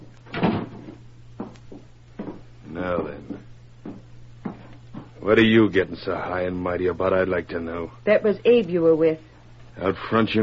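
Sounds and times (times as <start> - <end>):
low steady hum: 0.0 - 10.4
door swinging shut with a solid thud: 0.3 - 1.0
speech: 2.8 - 3.5, 5.3 - 10.4.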